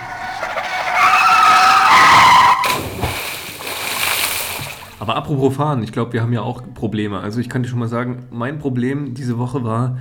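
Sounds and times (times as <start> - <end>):
loud tire screech: 0.0 - 3.1
water splash: 0.0 - 5.0
rushing water: 0.9 - 5.0
speech: 5.1 - 9.9.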